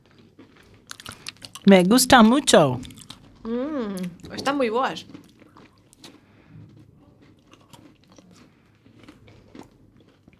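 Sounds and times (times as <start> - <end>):
someone biting and chewing Galician donuts: 0.0 - 10.3
speech: 1.6 - 5.2
low steady mouth noise: 1.7 - 4.4.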